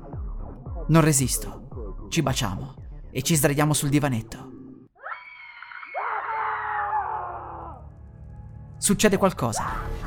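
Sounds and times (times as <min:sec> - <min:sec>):
speech: 0:00.9 - 0:04.5, 0:08.8 - 0:10.0
people screaming shrilly: 0:05.0 - 0:07.9.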